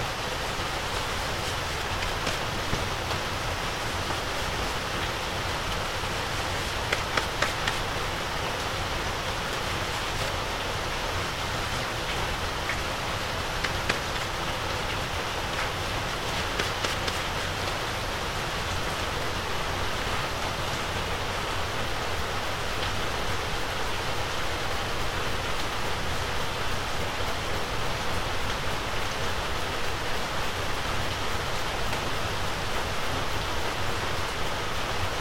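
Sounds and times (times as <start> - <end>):
steady rain on an evening before a typhoon: 0.0 - 35.1
small clicks and taps: 6.9 - 7.9.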